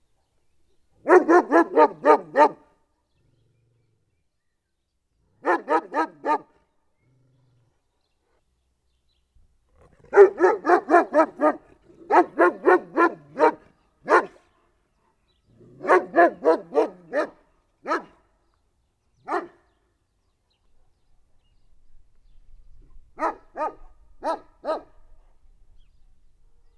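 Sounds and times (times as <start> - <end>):
dog along a fence in a farmyard: 1.1 - 2.6, 9.7 - 14.4, 15.8 - 18.2, 19.3 - 19.6, 23.2 - 25.0.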